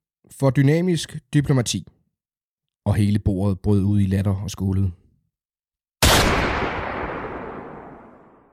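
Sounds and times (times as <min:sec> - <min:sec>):
speech: 0:00.3 - 0:02.0, 0:02.9 - 0:05.0
pistol shot: 0:06.0 - 0:08.5.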